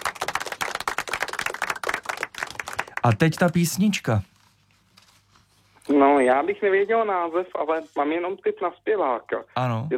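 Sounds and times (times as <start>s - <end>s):
crowd applause: 0.0s - 3.5s
speech: 3.0s - 4.3s, 6.3s - 9.9s.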